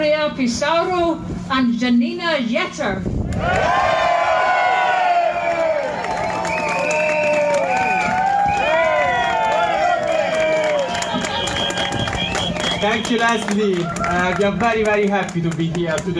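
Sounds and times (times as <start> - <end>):
speech: 0.3 - 4.1, 12.8 - 16.1
large crowd cheering and whooping: 3.3 - 14.7
steady applause: 5.4 - 16.1.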